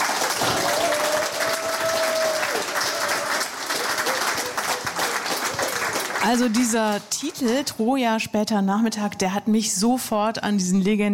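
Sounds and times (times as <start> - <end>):
audience applause: 0.0 - 7.6
speech: 6.2 - 11.1.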